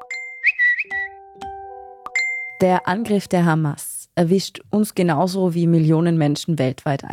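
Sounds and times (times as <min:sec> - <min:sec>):
phone push notification chimes for news alerts: 0:00.0 - 0:03.4
speech: 0:02.6 - 0:07.1.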